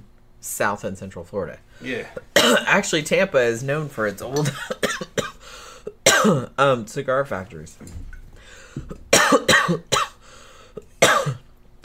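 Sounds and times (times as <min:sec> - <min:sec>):
speech: 0:00.4 - 0:04.9, 0:06.2 - 0:08.1, 0:08.8 - 0:09.0
person coughing harshly: 0:01.9 - 0:02.7, 0:04.4 - 0:06.5, 0:08.7 - 0:11.5.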